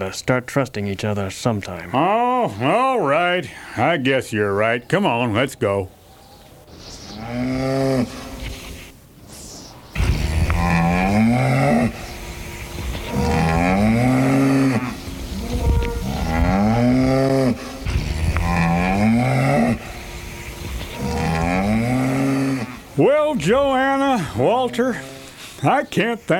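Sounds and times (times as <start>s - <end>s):
speech: 0.0s - 6.0s, 6.8s - 8.2s, 23.4s - 26.3s
cows waiting to be milked mooing in a barn: 7.1s - 8.6s, 10.0s - 25.4s.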